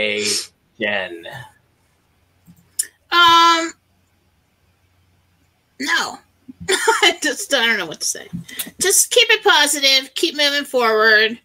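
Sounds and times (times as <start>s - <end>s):
speech: 0.0s - 1.6s, 3.1s - 3.8s, 5.8s - 11.4s
soft taps: 8.2s - 8.8s.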